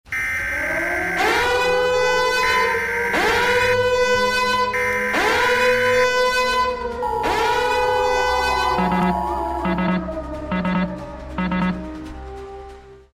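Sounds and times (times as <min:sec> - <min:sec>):
beeping: 0:00.1 - 0:03.4, 0:04.0 - 0:06.0, 0:08.1 - 0:11.8
wailing siren: 0:00.1 - 0:12.4.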